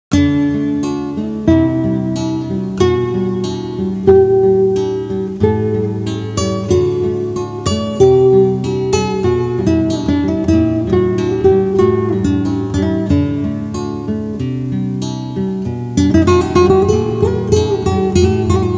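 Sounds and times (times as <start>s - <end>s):
guitar: 0.1s - 18.7s.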